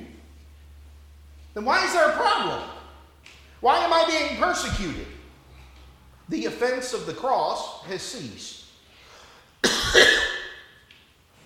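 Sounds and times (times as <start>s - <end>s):
speech: 1.6s - 2.8s, 3.6s - 5.2s, 6.3s - 8.6s
man preaching a sermon clearing his throat: 9.6s - 10.6s.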